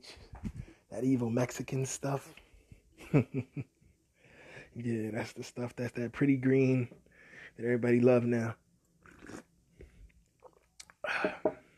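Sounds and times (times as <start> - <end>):
speech: 1.0 - 2.4, 3.1 - 3.8, 4.8 - 8.6
person sipping hot Bigelow lemon ginger tea: 9.0 - 11.6.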